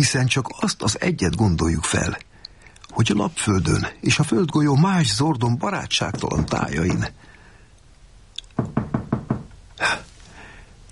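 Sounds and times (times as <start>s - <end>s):
speech: 0.0s - 2.3s, 2.9s - 7.3s
heavy pounding on a door: 6.1s - 7.0s, 8.6s - 9.5s.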